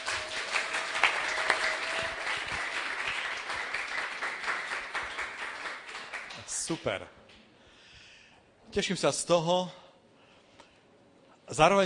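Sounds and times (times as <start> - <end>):
crowd applauding: 0.0 - 6.8
speech: 6.7 - 7.2, 8.7 - 9.8, 11.5 - 11.8.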